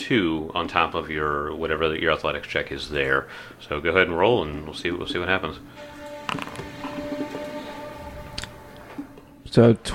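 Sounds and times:
speech: 0:00.1 - 0:06.7, 0:09.5 - 0:09.9
heavy stuck door caked with clay creaking open: 0:05.6 - 0:09.4.

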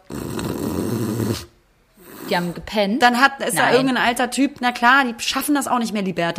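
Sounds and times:
voice imitating loud snoring: 0:00.0 - 0:02.6
speech: 0:02.3 - 0:06.3.

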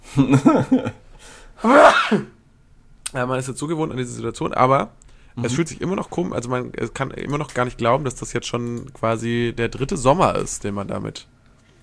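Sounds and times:
speech: 0:00.2 - 0:01.0, 0:01.6 - 0:02.4, 0:03.1 - 0:11.8
loud sneeze with voiced breaths: 0:01.6 - 0:02.4.

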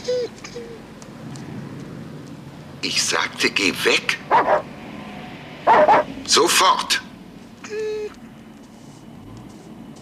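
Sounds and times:
speech: 0:02.8 - 0:04.7, 0:05.6 - 0:07.0
dog barking sharply: 0:04.2 - 0:04.7, 0:05.7 - 0:06.1.

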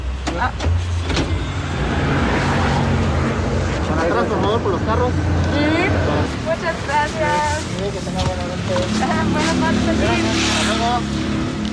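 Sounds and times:
busy rush-hour street traffic with cars and mopeds: 0:00.0 - 0:11.7.

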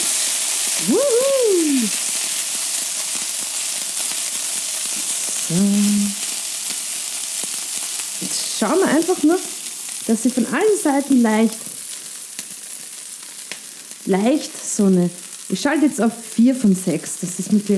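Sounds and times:
food sizzling in a shaken frying pan: 0:00.0 - 0:17.7
person exclaiming: 0:00.8 - 0:02.0, 0:05.5 - 0:06.2
speech: 0:00.8 - 0:02.0, 0:05.5 - 0:06.2, 0:08.6 - 0:09.5, 0:10.1 - 0:11.7, 0:14.1 - 0:17.7.

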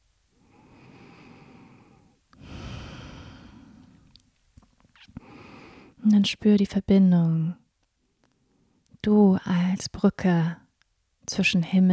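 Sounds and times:
person breathing in and out slowly during a guided meditation: 0:00.4 - 0:04.1, 0:05.1 - 0:06.0
speech: 0:06.0 - 0:07.6, 0:09.0 - 0:10.6, 0:11.3 - 0:11.9.

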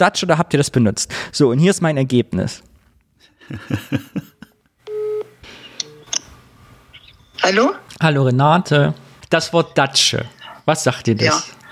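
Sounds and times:
speech: 0:00.0 - 0:02.7, 0:03.5 - 0:04.1, 0:07.4 - 0:11.6
laughter: 0:03.4 - 0:04.6
telephone dialing tones as a call is placed: 0:04.9 - 0:06.2.

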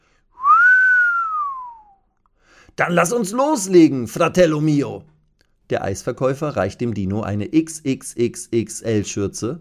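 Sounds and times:
excited human whistling: 0:00.4 - 0:02.1
speech: 0:02.8 - 0:05.1, 0:05.7 - 0:09.5.

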